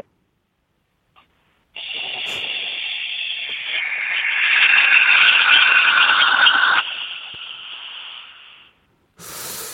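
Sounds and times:
Boeing 747 jet engine roaring with a high whine: 1.8 - 8.7
brief burst of noise: 1.8 - 9.7.

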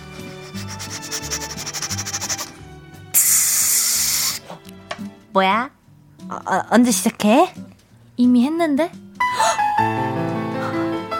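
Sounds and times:
soft music: 0.0 - 11.1
girl-group member imitating a rice cooker releasing steam: 0.6 - 2.5, 3.2 - 4.5
speech: 5.3 - 9.0, 9.8 - 10.2.

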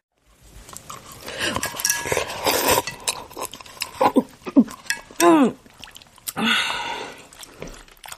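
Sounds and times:
ramen noodles being slurped: 0.2 - 8.1
metal utensils clinking and scraping against a bowl: 0.8 - 5.5.

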